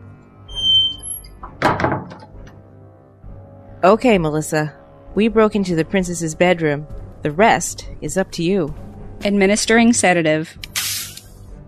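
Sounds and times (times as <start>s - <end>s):
door squeaking open: 0.5s - 2.2s
door clunk: 1.4s - 2.5s
speech: 3.8s - 10.7s.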